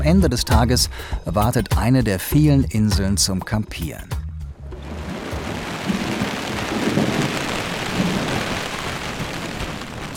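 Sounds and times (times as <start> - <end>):
speech: 0.0 - 4.2
heavy rain battering a camping tent on a lake island: 4.8 - 10.1.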